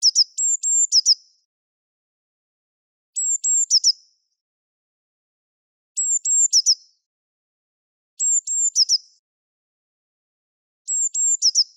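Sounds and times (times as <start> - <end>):
blue tit: 0.0 - 1.5, 3.2 - 4.2, 6.0 - 7.1, 8.2 - 9.2, 10.9 - 11.7.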